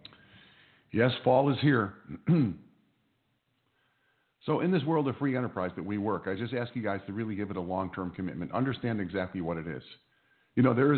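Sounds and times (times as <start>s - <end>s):
speech: 0.9s - 2.6s, 4.4s - 10.0s, 10.6s - 10.9s
man giving a short throaty cough or throat clearing: 2.1s - 2.6s.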